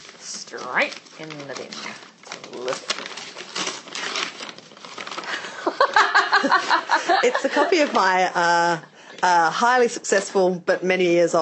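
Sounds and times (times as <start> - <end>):
gift wrapping paper torn open and scrunched: 0.0 - 8.3
speech: 0.5 - 3.2, 7.2 - 11.3
people laughing: 5.3 - 8.9.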